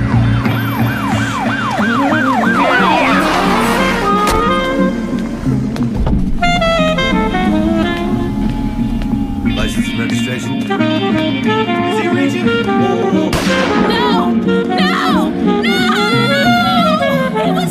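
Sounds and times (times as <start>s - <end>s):
loud police sirens in the street: 0.0s - 10.6s
constant low traffic rumble: 0.0s - 17.6s
blaring horn-like blasts: 2.3s - 17.6s.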